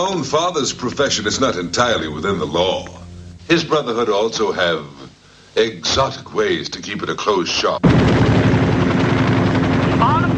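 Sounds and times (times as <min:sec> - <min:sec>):
speech: 0:00.0 - 0:05.0, 0:05.6 - 0:08.1
aircraft flying overhead with rotor-like engine drone: 0:00.0 - 0:05.1, 0:07.8 - 0:10.3.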